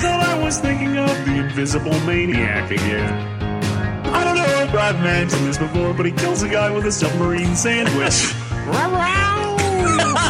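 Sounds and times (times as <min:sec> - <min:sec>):
speech: 0:00.5 - 0:03.7, 0:04.7 - 0:09.4
laughter: 0:04.2 - 0:08.9, 0:09.6 - 0:10.2
house cat meowing: 0:08.7 - 0:10.0.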